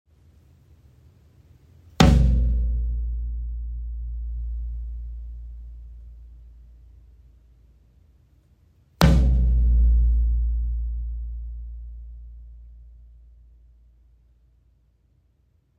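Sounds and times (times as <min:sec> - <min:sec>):
floor tom drum: 0:02.0 - 0:06.0, 0:09.0 - 0:13.1.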